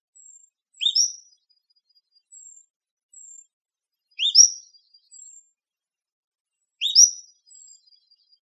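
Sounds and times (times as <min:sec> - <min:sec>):
Cordilleran flycatcher calling in Arizona: 0:00.2 - 0:01.2, 0:04.2 - 0:05.4, 0:06.8 - 0:07.7.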